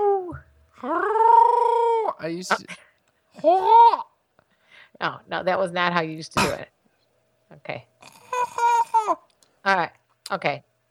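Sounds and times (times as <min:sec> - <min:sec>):
person imitating a wolf howl for Halloween: 0:00.0 - 0:02.2
speech: 0:00.8 - 0:01.2, 0:02.2 - 0:04.1, 0:05.0 - 0:06.7, 0:07.6 - 0:07.9, 0:09.1 - 0:10.7.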